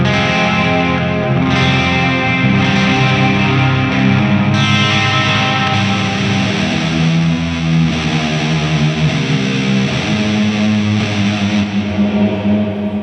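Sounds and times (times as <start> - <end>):
dark electric guitar through modulation and reverb effects: 0.0 - 13.0.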